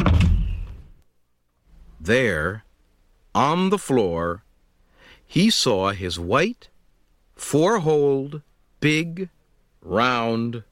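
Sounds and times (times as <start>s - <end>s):
heavy door slamming shut: 0.0s - 0.9s
speech: 2.1s - 2.7s, 3.4s - 4.4s, 5.3s - 6.7s, 7.4s - 10.7s.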